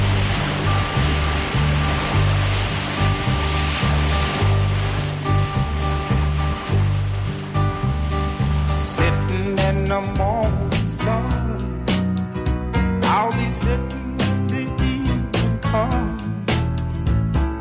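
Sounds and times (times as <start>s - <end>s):
surf breaking at a shoreline at the bottom of Manhattan: 0.0s - 10.2s
music track with low bass notes and sustained tones: 0.0s - 17.5s.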